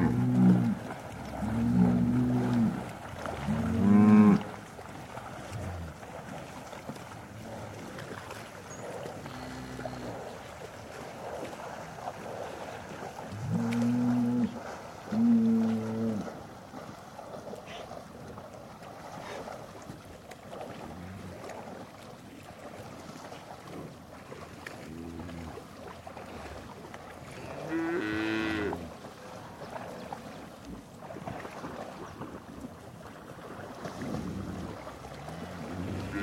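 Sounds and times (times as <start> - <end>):
cows mooing: 0.0 - 0.8, 1.4 - 4.5, 9.2 - 10.3, 13.4 - 16.3, 27.4 - 28.9, 34.7 - 36.2.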